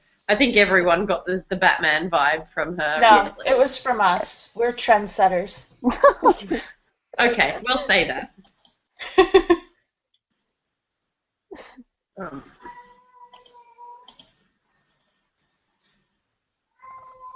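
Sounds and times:
speech: 0.3s - 9.6s, 11.6s - 12.6s
upset cat meowing: 16.8s - 17.3s.

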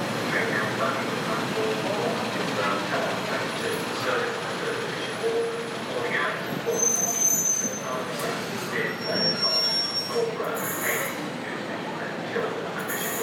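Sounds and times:
train rumbling into station platform: 0.0s - 13.2s
faint voices murmuring: 0.2s - 13.2s
high-pitched train wheel and brake squeals: 6.6s - 11.2s, 12.9s - 13.2s.

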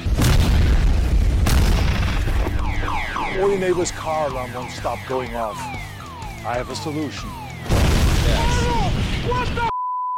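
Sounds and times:
dynamite explosion boom: 0.0s - 2.7s, 7.6s - 9.4s
speech: 3.4s - 5.8s, 6.4s - 7.4s, 8.2s - 9.7s.

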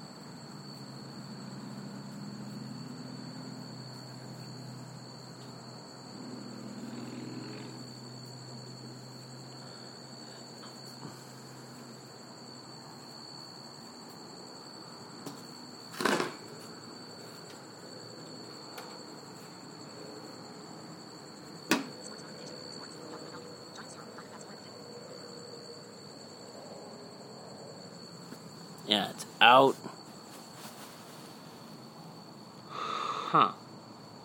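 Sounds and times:
insect with a solid continuous trill: 0.2s - 34.2s
sharp knocks: 21.7s - 21.9s
speech: 29.0s - 29.8s, 33.4s - 33.6s.

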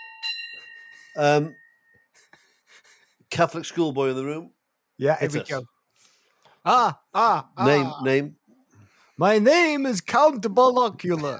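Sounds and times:
bell being struck and ringing: 0.0s - 2.1s
speech: 1.2s - 1.6s, 3.3s - 5.7s, 6.6s - 8.4s, 9.2s - 11.3s
person exclaiming: 6.7s - 8.3s.

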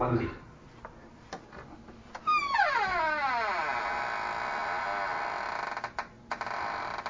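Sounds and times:
unoiled door creaking open: 1.4s - 7.0s.

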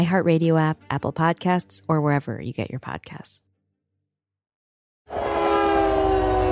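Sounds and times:
speech: 0.0s - 3.5s
freight train rumbling roar heard from inside a boxcar: 5.1s - 6.5s.

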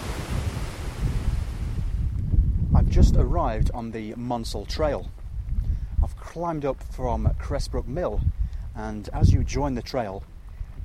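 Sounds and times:
weir torrent and white water rapids roaring: 0.0s - 2.2s
speech: 2.9s - 5.2s, 6.1s - 10.3s.

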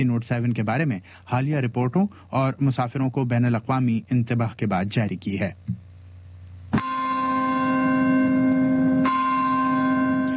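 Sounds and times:
speech: 0.0s - 5.8s
bells ringing in the United States for the September 11 anniversary: 6.8s - 10.3s.

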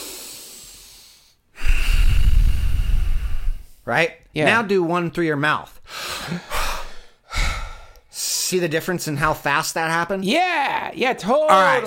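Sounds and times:
breathing in and out through the nose: 0.0s - 3.8s, 5.9s - 8.1s
speech: 3.9s - 6.5s, 8.5s - 11.8s.

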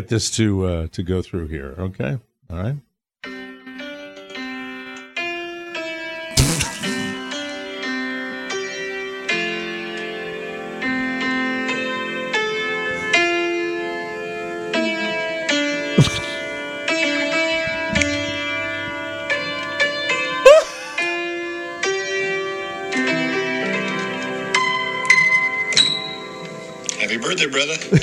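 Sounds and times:
speech: 0.0s - 2.9s
old piano playing a tune played back on a phone: 3.2s - 28.0s
laughter: 6.4s - 7.2s, 16.0s - 16.6s, 20.5s - 21.1s, 27.2s - 28.0s
sharp knocks: 16.0s - 16.5s.

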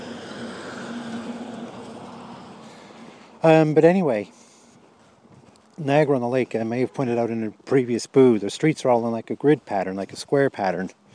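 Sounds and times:
school bus engine rumble driving by on a street: 0.0s - 3.7s
road noise: 0.0s - 11.1s
speech: 3.4s - 4.4s, 5.8s - 11.1s.

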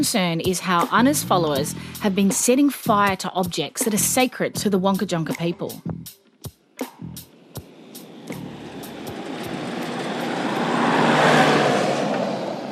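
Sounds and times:
speech: 0.0s - 6.2s
strong outdoor wind rushing: 7.6s - 12.7s.

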